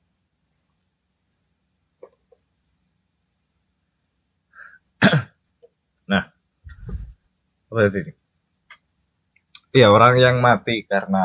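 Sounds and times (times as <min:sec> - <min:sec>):
low rough throat clearing: 0:05.0 - 0:05.4
sharp coughs caused by ice: 0:05.0 - 0:05.4
speech: 0:07.8 - 0:08.2, 0:09.8 - 0:11.2.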